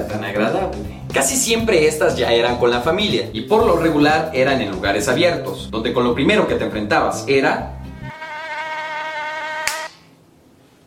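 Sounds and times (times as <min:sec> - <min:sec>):
speech: 0:00.0 - 0:07.8
high-pitched mosquito whine with wavering harmonic buzz: 0:07.7 - 0:10.0
sharp click: 0:09.6 - 0:10.1.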